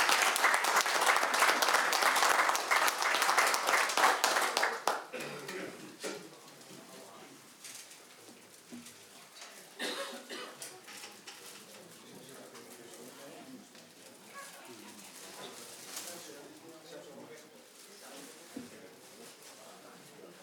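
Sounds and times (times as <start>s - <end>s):
room full of people clapping: 0.0s - 5.6s.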